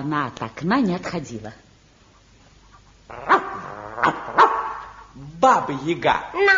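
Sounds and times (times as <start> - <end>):
speech: 0.0 - 1.6, 4.0 - 4.5, 5.2 - 6.5
dog whining or growling: 3.1 - 5.0
dog barking: 3.3 - 5.0.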